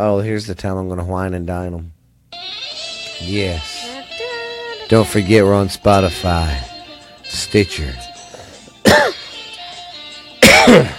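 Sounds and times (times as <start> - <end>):
speech: 0.0 - 2.0, 3.2 - 3.7, 4.9 - 6.7, 7.3 - 8.1
person coughing sharply and throatily: 8.8 - 9.3, 10.4 - 10.9.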